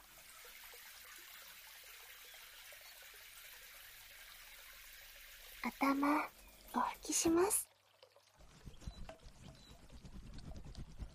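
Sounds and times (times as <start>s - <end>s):
running water rinsing shampoo foam from hair: 0.0s - 11.1s
speech: 5.6s - 7.7s.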